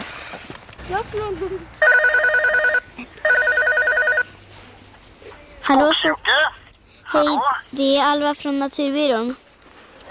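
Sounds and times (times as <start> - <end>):
speech: 0.9 - 1.9, 5.7 - 6.5, 7.1 - 9.4
telephone ringing on an outgoing call: 1.8 - 4.3.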